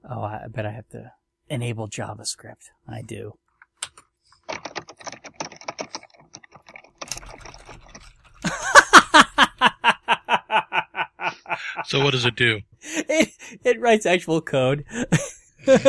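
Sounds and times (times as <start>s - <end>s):
speech: 0.1s - 3.4s, 11.7s - 15.8s
rapid typing on a computer keyboard: 3.8s - 9.5s
person laughing loudly and rhythmically: 8.4s - 13.2s, 14.9s - 15.8s.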